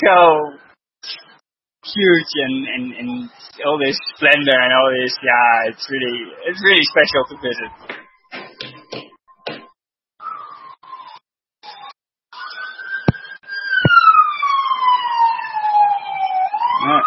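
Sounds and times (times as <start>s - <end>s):
speech: 0.0s - 1.2s, 1.9s - 8.0s
ambulance siren yelping and wailing as the ambulance passes: 6.2s - 8.0s, 10.2s - 17.0s.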